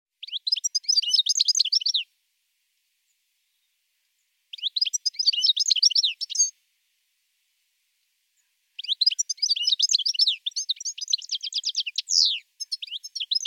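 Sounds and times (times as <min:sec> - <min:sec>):
European goldfinch singing: 0:00.2 - 0:02.1, 0:04.5 - 0:06.5, 0:08.8 - 0:13.4.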